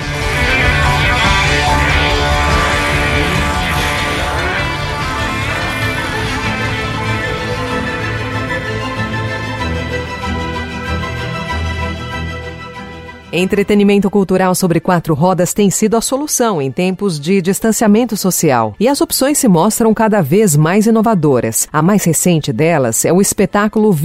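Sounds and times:
full-band rock song sung by the drummer: 0:00.0 - 0:12.7
speech: 0:13.4 - 0:24.0.

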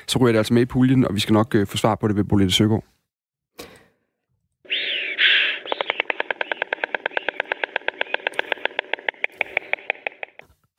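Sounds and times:
speech: 0:00.1 - 0:03.0
white stork wings rustling while landing in its nest: 0:04.7 - 0:10.4
white stork wooden bill-clattering in its nest: 0:04.7 - 0:10.4.

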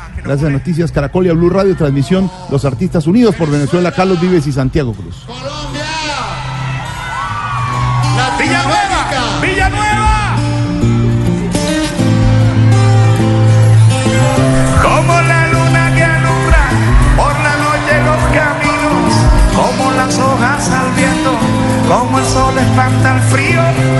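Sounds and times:
live concert music: 0:00.0 - 0:23.9
speech: 0:00.2 - 0:05.6, 0:21.9 - 0:23.9
concert crowd cheering and yelling: 0:05.3 - 0:23.9.

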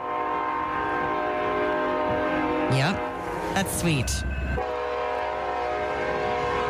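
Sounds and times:
long steady train whistle: 0:00.0 - 0:03.4, 0:04.6 - 0:06.6
speech: 0:02.7 - 0:04.6.

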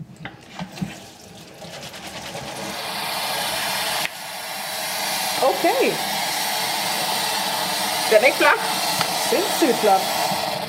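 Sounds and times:
boiling water poured onto dried seaweed: 0:00.0 - 0:10.4
speech: 0:05.5 - 0:06.2, 0:08.1 - 0:10.2.

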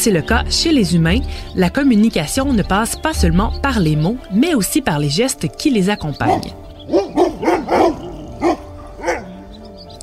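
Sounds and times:
speech: 0:00.0 - 0:07.1
dog barking: 0:06.2 - 0:09.4.

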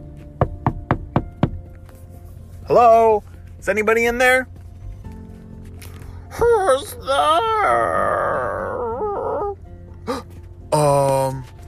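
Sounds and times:
knocking on a wooden door: 0:00.4 - 0:01.7
speech: 0:02.7 - 0:04.5, 0:06.4 - 0:08.6, 0:10.1 - 0:11.5.

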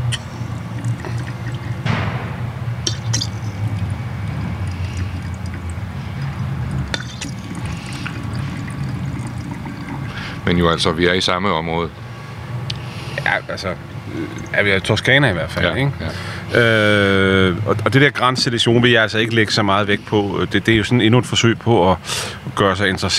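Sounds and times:
Classico Gran Selezione wine from Tuscany pouring into a glass: 0:00.2 - 0:01.8, 0:02.9 - 0:10.5
small glass clinks: 0:02.9 - 0:03.7
speech: 0:10.6 - 0:12.1, 0:13.5 - 0:23.1.

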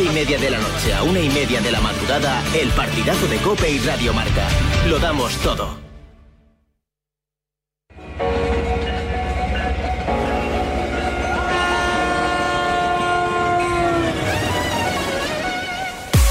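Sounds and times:
speech: 0:00.2 - 0:05.8
train starting off with loud rhythmic clatter: 0:08.0 - 0:13.8
train horn sounding long sustained tones: 0:08.3 - 0:16.2.

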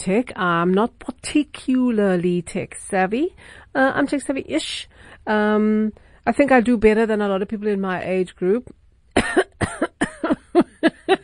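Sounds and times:
speech: 0:00.0 - 0:09.9, 0:10.6 - 0:11.0
person coughing harshly: 0:09.2 - 0:11.2.

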